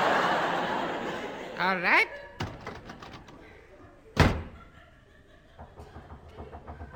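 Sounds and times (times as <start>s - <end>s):
laughter: 0.0s - 2.4s, 3.4s - 6.9s
speech: 1.6s - 2.5s
knock on a wooden door: 5.6s - 6.9s.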